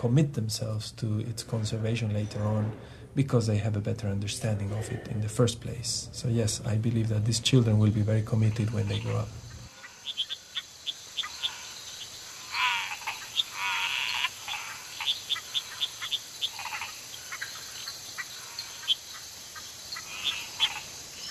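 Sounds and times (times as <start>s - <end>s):
speech: 0.0s - 9.4s
steady high insect drone: 5.7s - 21.2s
nighttime chorus of frogs croaking and chirping: 7.6s - 21.2s.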